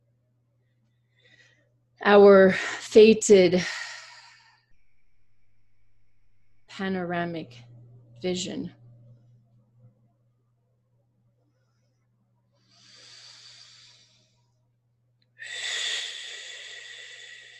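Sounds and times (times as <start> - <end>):
speech: 2.0 - 3.8, 6.8 - 8.8
faint low steady hum: 2.0 - 15.3
deep breathing during a meditation: 3.6 - 6.8, 12.6 - 14.5, 15.4 - 17.5.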